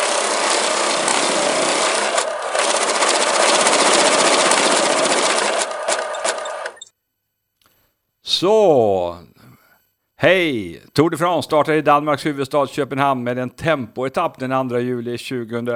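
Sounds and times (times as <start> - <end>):
tombola raffle drum being turned: 0.0 - 6.9
speech: 8.4 - 9.3, 10.2 - 15.7.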